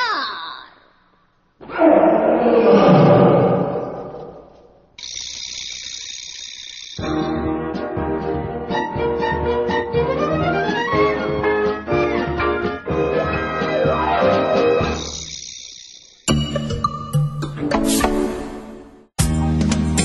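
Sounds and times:
lion roaring: 0:01.6 - 0:04.5
high steady tone: 0:05.0 - 0:07.3
music: 0:07.0 - 0:15.0, 0:16.3 - 0:20.0.

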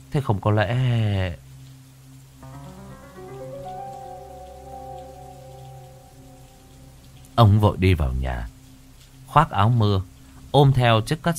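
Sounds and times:
speech: 0:00.1 - 0:01.4, 0:07.4 - 0:08.5, 0:09.3 - 0:11.3
rain pattering at night: 0:00.4 - 0:11.3
sustained tones: 0:02.4 - 0:07.6.

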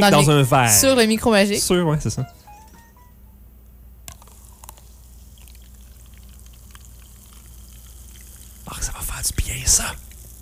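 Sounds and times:
speech: 0:00.0 - 0:02.4
carbonated soft drink fizzing as it is poured into a glass: 0:04.1 - 0:10.3.

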